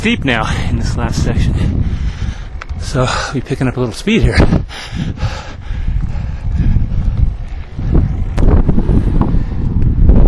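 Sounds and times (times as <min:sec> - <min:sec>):
speech: 0:00.0 - 0:02.0, 0:02.8 - 0:05.5
strong wind buffeting the microphone in a canyon: 0:00.0 - 0:10.2.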